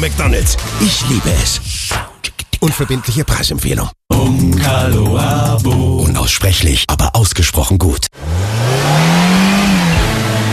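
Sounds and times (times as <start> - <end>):
speech: 0.0 - 9.2
car engine revving: 8.2 - 10.5.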